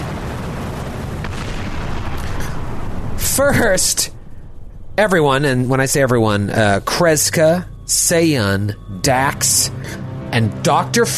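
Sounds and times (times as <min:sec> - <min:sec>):
sharp cracking bursts: 0:00.0 - 0:04.9
explosions booming: 0:00.0 - 0:06.2
speech: 0:03.4 - 0:04.2, 0:05.0 - 0:11.1.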